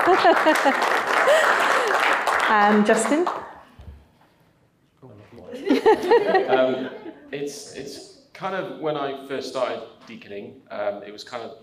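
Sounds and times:
laughter: 0.0s - 2.1s, 5.5s - 8.1s
room full of people applauding: 0.0s - 3.6s
speech: 0.1s - 3.5s, 5.9s - 11.6s.

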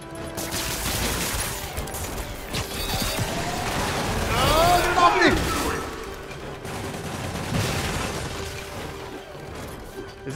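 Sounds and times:
turret gunfire bursts in a video game: 0.0s - 9.0s
busy video game backdrop: 0.0s - 10.3s.

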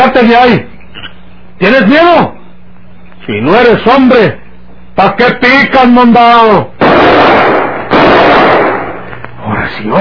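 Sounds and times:
speech: 0.1s - 0.7s, 1.6s - 2.4s, 3.2s - 4.4s, 5.0s - 6.7s
pistol gunshots: 6.8s - 9.1s.

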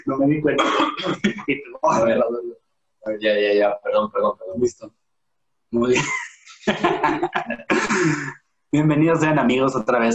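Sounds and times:
speech: 0.0s - 5.0s, 5.7s - 10.1s
coughing: 0.5s - 2.2s, 7.0s - 8.5s
laughter: 6.0s - 8.3s
throat clearing: 7.7s - 8.4s.

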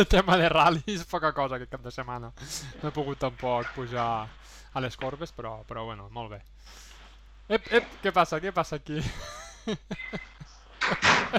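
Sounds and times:
speech: 0.0s - 6.9s, 7.5s - 11.3s
laughter: 9.0s - 11.3s
short knocks and clatters: 10.1s - 11.3s
door swinging shut: 10.2s - 11.3s.

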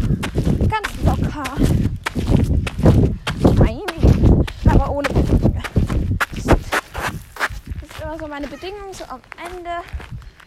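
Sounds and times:
hoofbeats of a ridden horse walking: 0.0s - 10.4s
speech: 8.4s - 10.1s.

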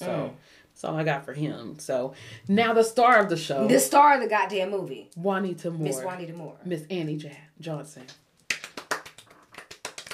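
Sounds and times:
speech: 0.1s - 8.2s
sparse hand clapping: 8.5s - 10.1s.

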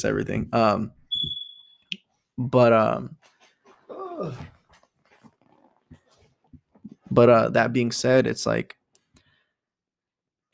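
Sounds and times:
speech: 0.0s - 1.4s, 2.4s - 3.3s, 4.2s - 4.6s, 7.1s - 8.8s
dog whimpering: 3.9s - 4.5s.

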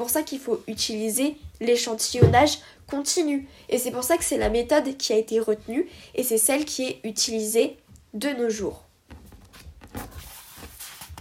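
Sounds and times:
speech: 0.0s - 8.9s
sheet of paper crinkling and rustling while being swapped: 9.2s - 11.2s.

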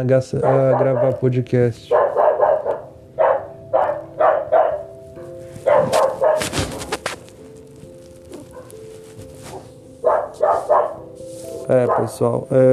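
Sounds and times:
speech: 0.0s - 2.0s, 11.7s - 12.7s
dog barking: 0.4s - 1.2s, 1.9s - 4.9s, 5.6s - 6.6s, 8.4s - 8.8s, 9.5s - 11.1s, 11.7s - 12.2s.

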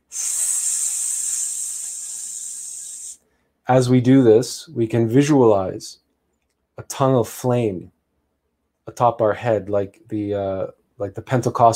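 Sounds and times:
person hissing like a snake during a meditation breathing exercise: 0.0s - 3.2s
speech: 3.7s - 6.0s, 6.8s - 8.0s, 8.9s - 11.7s.

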